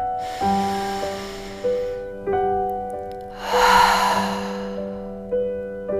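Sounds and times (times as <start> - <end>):
deep breath in and out during a guided music meditation: 0.0 - 2.5, 3.3 - 5.3
calm sustained musical tones: 0.0 - 5.6.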